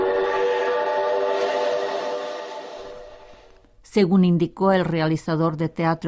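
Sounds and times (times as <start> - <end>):
train whistle blowing a multi-toned note on a theatre stage: 0.0 - 3.5
speech: 4.0 - 6.0.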